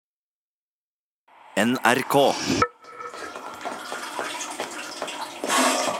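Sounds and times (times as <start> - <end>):
speech: 1.6 - 2.7
water sloshing and gurgling inside an enclosed metal space in a submarine: 2.5 - 5.9.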